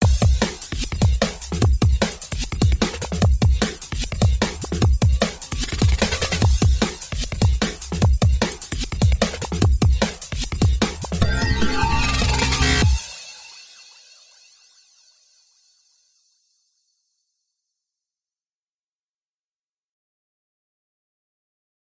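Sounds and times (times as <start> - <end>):
ethereal drums: 0.0 - 14.4
ethereal sound effects: 11.1 - 15.0.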